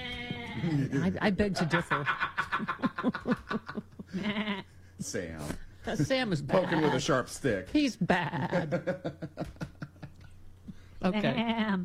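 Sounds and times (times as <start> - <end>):
ram bleating: 0.0 - 0.8, 4.2 - 4.7, 6.5 - 7.1, 11.2 - 11.8
laughter: 0.6 - 4.5, 8.1 - 10.3
speech: 0.6 - 9.6, 11.0 - 11.8.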